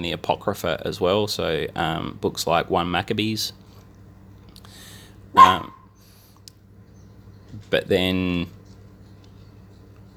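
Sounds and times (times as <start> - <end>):
speech: 0.0 - 3.6, 5.3 - 5.8, 7.5 - 8.6
faint low hum: 0.0 - 10.1
dog barking: 5.4 - 5.9.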